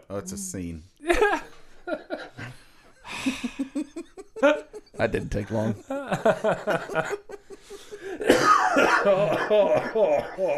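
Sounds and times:
speech: 0.1s - 1.4s, 4.4s - 7.3s, 8.8s - 10.5s
person laughing: 1.0s - 7.9s, 8.9s - 10.5s
person under the weather clearing throat: 8.2s - 10.5s
person under the weather coughing: 8.2s - 10.5s.

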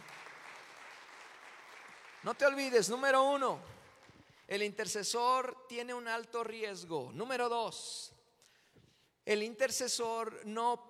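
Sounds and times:
audience clapping steadily and loudly: 0.0s - 2.8s
speech: 2.2s - 3.8s, 4.5s - 8.2s, 9.3s - 10.8s.

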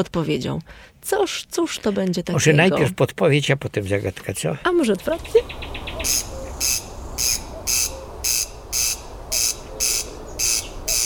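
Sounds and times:
speech: 0.0s - 6.8s
common cuckoo calling: 5.1s - 11.0s
buzzing bursts of an old watch being wound: 6.0s - 11.0s.

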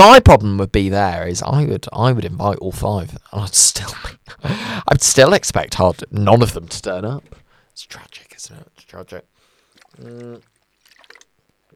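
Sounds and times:
speech: 0.0s - 9.3s, 10.0s - 10.5s
brief voiced hum in the throat: 6.4s - 11.7s
swallowing: 7.1s - 11.7s
slurping a drink of water: 9.4s - 11.7s
small wet mouth clicks: 9.5s - 11.7s.

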